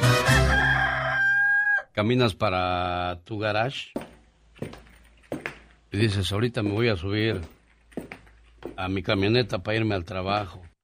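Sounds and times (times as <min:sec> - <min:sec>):
rooster crowing: 0:00.2 - 0:01.9
speech: 0:02.0 - 0:04.0, 0:04.6 - 0:04.8, 0:05.9 - 0:07.6, 0:08.6 - 0:10.7.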